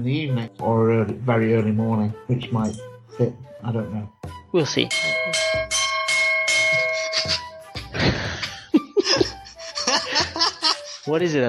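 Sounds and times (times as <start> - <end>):
speech: 0.0 - 5.2, 11.1 - 11.4
gong struck with bright metallic tones: 4.9 - 7.7
laughter and chuckling: 6.9 - 11.4.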